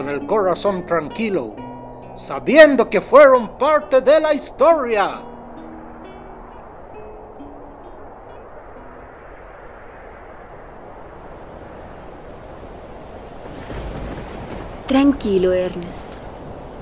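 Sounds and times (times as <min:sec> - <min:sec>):
speech: 0:00.0 - 0:01.6, 0:02.2 - 0:05.3, 0:14.9 - 0:16.2
gusting wind: 0:00.0 - 0:16.7
rough Antarctic sea waves: 0:00.0 - 0:16.7.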